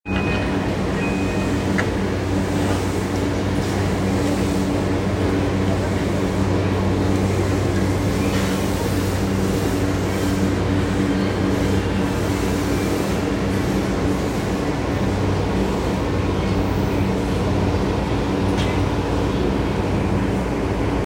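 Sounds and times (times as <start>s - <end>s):
JR Yokosuka Line train near Kamakura: 0.0s - 21.0s.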